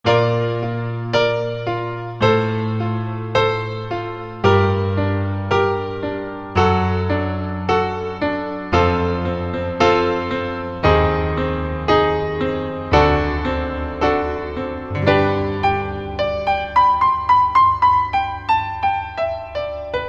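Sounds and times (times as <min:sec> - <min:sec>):
Alesis ZA stereo jazz piano: 0:00.0 - 0:20.0.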